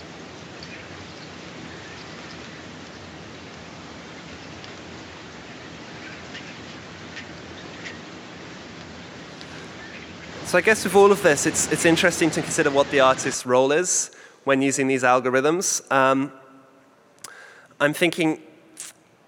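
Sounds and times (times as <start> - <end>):
flock of birds: 0.0 - 13.4
speech: 10.5 - 16.4, 17.8 - 18.9.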